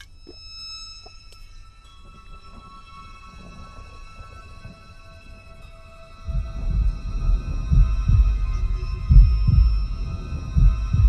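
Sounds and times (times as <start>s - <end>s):
faint steady hum: 0.0s - 11.0s
deep heartbeat thumping: 6.2s - 11.0s.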